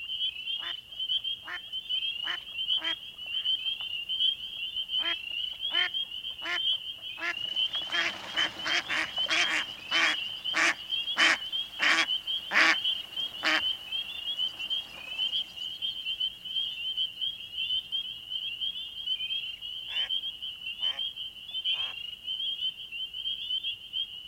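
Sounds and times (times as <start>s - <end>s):
frog chorus trilling in a northern marsh at night: 0.0s - 24.2s
mallard hens quacking while taking flight from a northern marsh: 5.0s - 16.7s.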